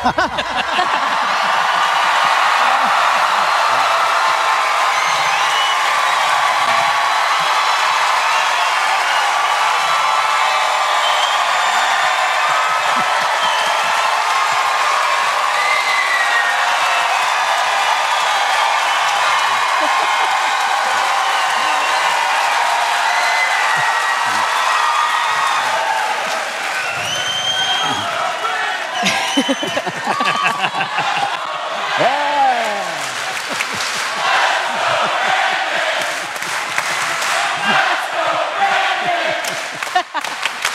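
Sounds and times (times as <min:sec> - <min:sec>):
audience laughter at a live event in Nashville: 0:00.0 - 0:02.0, 0:19.6 - 0:20.8, 0:29.0 - 0:31.5, 0:32.9 - 0:40.6
large audience at a live event in Nashville clapping: 0:00.0 - 0:40.7.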